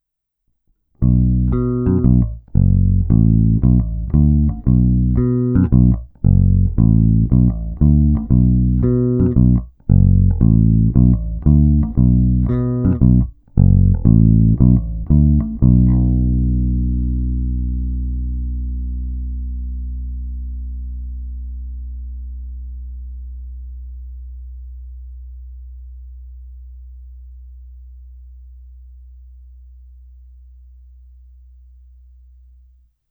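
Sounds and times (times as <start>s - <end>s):
black electric guitar on Xotic XJ-1T neck pickup: 1.0s - 21.9s.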